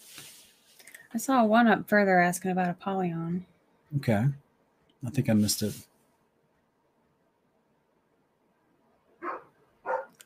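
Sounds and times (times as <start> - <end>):
speech: 1.1 - 4.4, 5.0 - 5.9
dog barking: 9.2 - 10.2.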